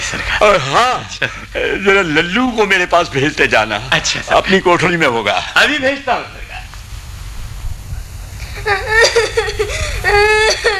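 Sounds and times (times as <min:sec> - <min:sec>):
low rumble: 0:00.0 - 0:10.7
speech: 0:00.1 - 0:06.4, 0:08.6 - 0:08.9
child crying and whimpering: 0:08.4 - 0:10.7.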